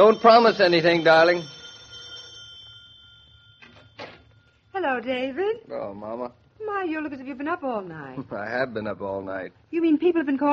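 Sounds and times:
speech: 0:00.0 - 0:01.6, 0:04.8 - 0:10.5
doorbell ringing: 0:00.0 - 0:05.6.

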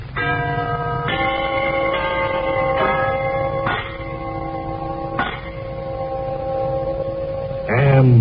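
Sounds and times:
brass door chimes ringing: 0:00.2 - 0:07.8.

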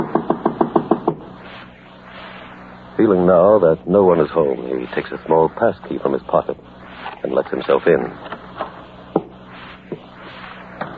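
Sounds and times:
knocking on a door: 0:00.0 - 0:01.2
speech: 0:03.0 - 0:08.3.

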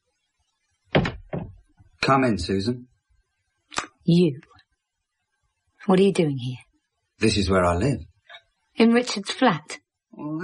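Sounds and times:
door to a spare room in a flat swinging open: 0:01.0 - 0:01.6
speech: 0:02.1 - 0:02.9, 0:03.7 - 0:04.5, 0:05.8 - 0:06.6, 0:07.2 - 0:08.1, 0:08.8 - 0:10.4.

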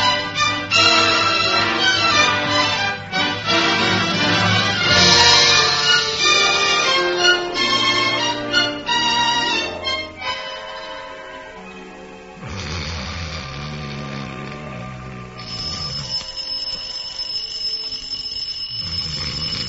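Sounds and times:
shrill alarm clock bell ringing: 0:00.0 - 0:12.4, 0:15.4 - 0:19.6
brassy music: 0:00.0 - 0:14.3.

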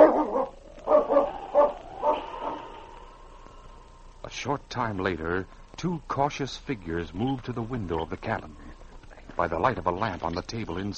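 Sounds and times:
dog growling and barking: 0:00.0 - 0:02.8
speech: 0:04.6 - 0:08.6, 0:09.4 - 0:10.9.

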